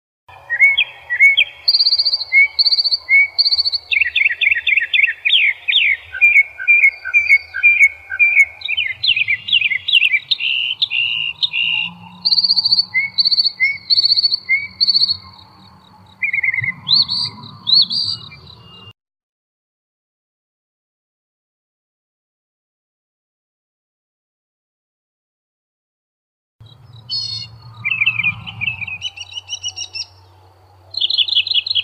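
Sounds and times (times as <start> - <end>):
northern mockingbird singing: 0.3 - 18.9, 26.6 - 31.8.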